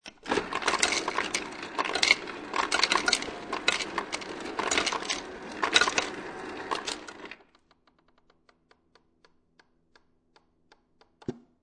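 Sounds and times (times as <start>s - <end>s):
household ice machine dispensing ice into empty plastic cup: 0.1s - 7.4s.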